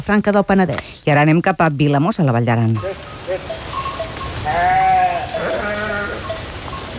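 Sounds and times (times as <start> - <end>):
speech: 0.0 - 3.5
busy outdoor background: 0.0 - 6.9
flock of sheep and goats bleating: 2.8 - 6.9.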